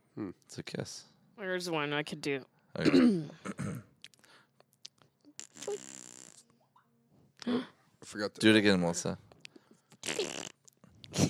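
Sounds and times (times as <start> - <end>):
speech: 0.2 - 3.9, 7.5 - 9.2
wet mouth noise imitating a fart: 4.8 - 6.6, 9.9 - 11.2.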